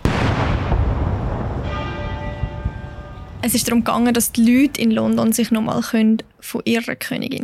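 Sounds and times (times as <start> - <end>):
dull thuds of cannon fire: 0.0 - 4.6
deep boom: 0.0 - 5.0
Big Ben bell tolling in London during a royal funeral procession: 1.4 - 5.2
speech: 3.4 - 7.4.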